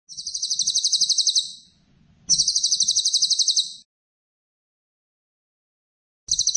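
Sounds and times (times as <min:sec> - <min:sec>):
cililin bird singing buzzy pulsed trills: 0:00.1 - 0:01.7, 0:02.3 - 0:03.8, 0:06.3 - 0:06.5.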